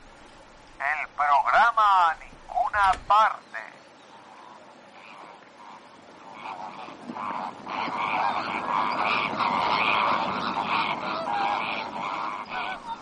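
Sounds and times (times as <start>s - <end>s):
flock of flamingos honking: 0.8s - 13.0s.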